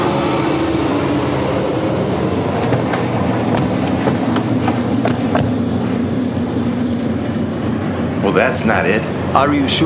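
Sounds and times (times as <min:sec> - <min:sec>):
Stinson Gullwing propeller plane engine drone landing at Rogers Field Honolulu Hawaii: 0:00.0 - 0:09.8
sharp clicks and rattles: 0:02.5 - 0:05.7
speech: 0:08.4 - 0:09.8.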